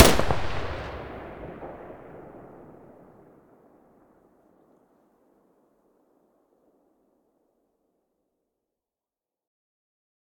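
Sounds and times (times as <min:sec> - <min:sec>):
weapon muzzle blast: 0:00.0 - 0:02.6.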